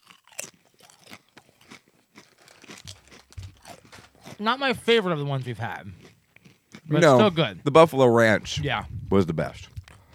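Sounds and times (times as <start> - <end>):
jalapeno tortilla chip being chewed: 0.0 - 4.4, 6.0 - 7.0
speech: 4.4 - 6.0, 6.9 - 9.7.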